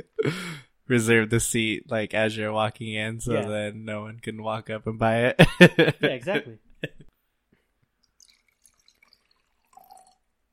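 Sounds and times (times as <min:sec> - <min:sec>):
speech: 0:00.0 - 0:07.0
beer pouring into a glass: 0:08.0 - 0:10.5.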